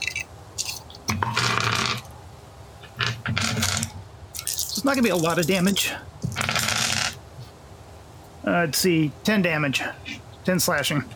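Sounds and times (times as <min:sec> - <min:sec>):
small four-sided dice shaken and rolled across a surface: 0:00.6 - 0:02.1, 0:03.0 - 0:07.2
speech: 0:04.8 - 0:06.2, 0:08.5 - 0:11.1.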